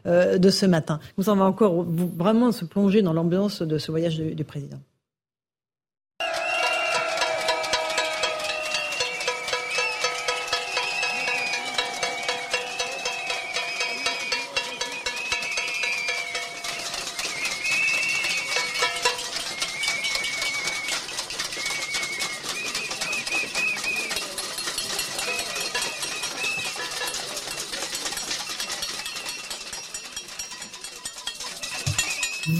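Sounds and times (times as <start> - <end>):
speech: 0.0 - 4.9
shrill whistles: 6.2 - 27.4, 30.9 - 32.5
protesters banging pots and pans outside a factory: 6.2 - 32.5.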